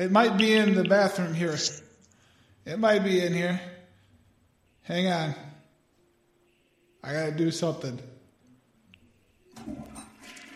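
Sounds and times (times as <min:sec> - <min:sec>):
speech: 0:00.0 - 0:01.9, 0:02.6 - 0:03.8, 0:04.8 - 0:05.5, 0:07.0 - 0:08.1
toilet flushing in a hotel bathroom: 0:09.5 - 0:10.5.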